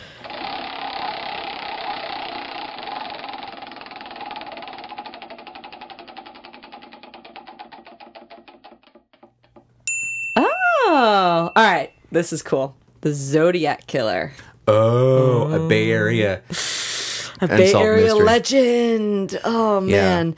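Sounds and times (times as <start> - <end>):
prize wheel spinning with rapid clicking: 0.2 - 9.1
speech: 11.0 - 16.7, 17.4 - 20.3.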